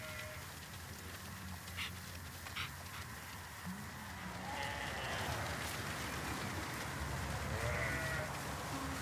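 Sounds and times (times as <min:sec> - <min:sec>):
flock of sheep bleating while moving: 0:00.0 - 0:00.5, 0:04.2 - 0:05.6, 0:07.5 - 0:09.0
sheep hooves shuffling through grass: 0:00.0 - 0:09.0.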